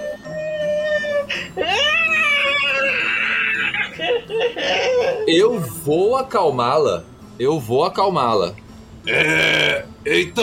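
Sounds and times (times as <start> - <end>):
voice imitating a living mountain's drawn-out wailing cry: 0.2 - 5.4
speech: 4.3 - 10.4.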